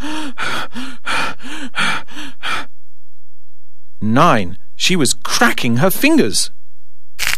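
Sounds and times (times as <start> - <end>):
person panting heavily after running: 0.0 - 2.7
speech: 4.1 - 6.6.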